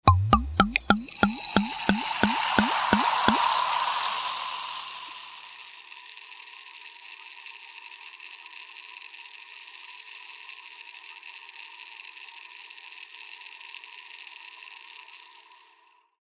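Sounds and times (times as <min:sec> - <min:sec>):
champagne pouring in and bubbling: 0:00.1 - 0:06.0.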